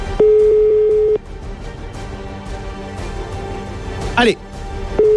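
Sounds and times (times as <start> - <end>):
telephone ringing tone while calling: 0.2 - 1.2, 5.0 - 5.1
speech: 4.2 - 4.4.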